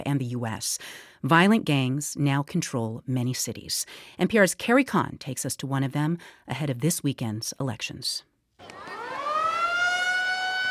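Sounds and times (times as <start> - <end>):
speech: 0.1 - 8.3
school siren in Durán Ecuador wailing for end of recess: 8.6 - 10.6.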